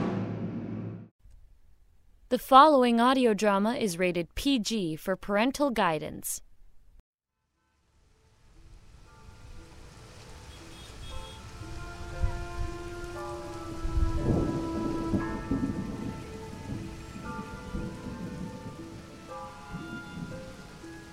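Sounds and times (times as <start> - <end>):
deep roll of thunder: 0.0 - 1.1, 11.0 - 21.1
speech: 2.3 - 6.5
heavy rain pouring: 8.2 - 21.1.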